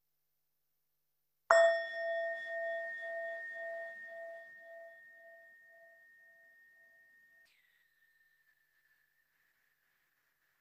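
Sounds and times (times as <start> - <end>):
meditation bell ringing: 1.5 - 7.4.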